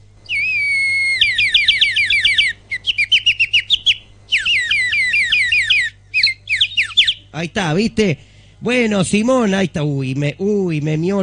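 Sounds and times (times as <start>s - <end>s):
small pet bird chirping and warbling: 0.2s - 7.4s
speech: 7.4s - 11.2s.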